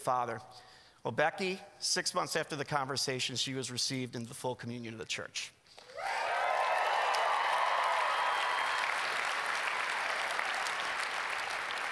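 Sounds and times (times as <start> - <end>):
speech: 0.0 - 6.1
large audience applause: 5.9 - 11.9.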